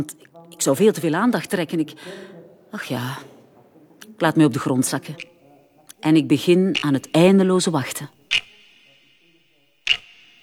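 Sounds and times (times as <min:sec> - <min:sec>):
speech: 0:00.0 - 0:03.3, 0:04.0 - 0:05.3, 0:06.0 - 0:08.2
crisp watch ticks with metallic ring: 0:05.0 - 0:10.4.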